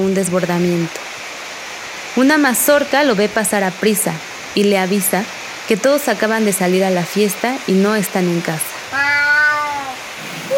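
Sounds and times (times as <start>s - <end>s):
speech: 0.0s - 1.0s, 2.2s - 8.7s
drawn-out cat meow sliding downward in pitch: 8.9s - 10.5s.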